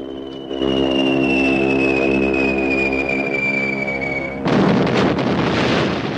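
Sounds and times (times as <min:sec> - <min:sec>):
falling whistle of bombs dropped from a bomber plane: 0:00.0 - 0:05.0
Japanese bomber plane engine droning: 0:00.0 - 0:06.1
bombs exploding on a town: 0:04.4 - 0:06.1.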